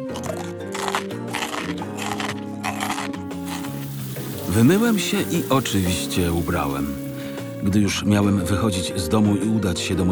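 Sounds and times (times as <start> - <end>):
crunch-resistant breakfast cereal crunched between teeth: 0.0 - 7.4
speech: 4.5 - 7.0, 7.6 - 10.0.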